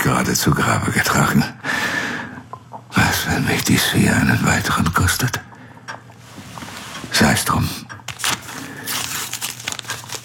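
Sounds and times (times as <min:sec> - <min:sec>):
speech: 0:00.1 - 0:01.8, 0:03.3 - 0:05.5, 0:07.2 - 0:07.8
paper envelope being handled: 0:08.0 - 0:10.2.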